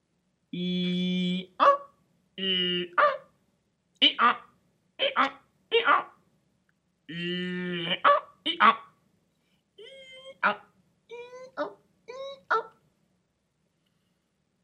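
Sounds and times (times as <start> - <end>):
speech: 0.5 - 0.8
person imitating a donkey braying: 0.6 - 3.3, 4.0 - 6.2, 7.1 - 8.9, 9.8 - 12.8.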